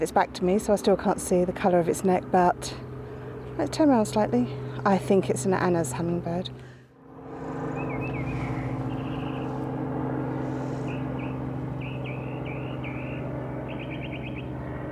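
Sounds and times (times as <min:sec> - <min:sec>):
speech: 0:00.0 - 0:02.9, 0:03.6 - 0:06.7
steady low drone of traffic or engine noise: 0:00.0 - 0:14.9
northern mockingbird calling in varied chirping phrases: 0:07.5 - 0:09.6, 0:10.7 - 0:14.7.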